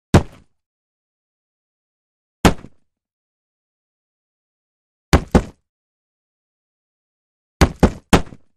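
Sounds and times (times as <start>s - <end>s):
punches, kicks and hits on a board: 5.1s - 5.6s, 7.6s - 8.5s.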